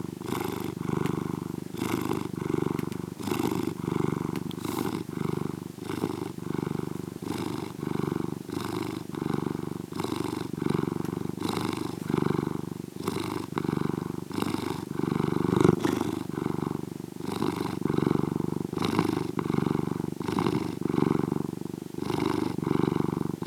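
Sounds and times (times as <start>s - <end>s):
domestic cat purring: 0.0s - 23.4s.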